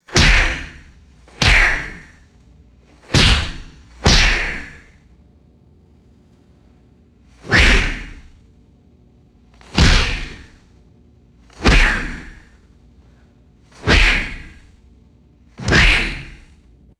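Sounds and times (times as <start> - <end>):
thick boxing ring ropes slapped and rattling: 0.0 - 5.0, 7.4 - 8.4, 9.5 - 10.7, 11.5 - 12.6, 13.8 - 14.8, 15.6 - 16.6.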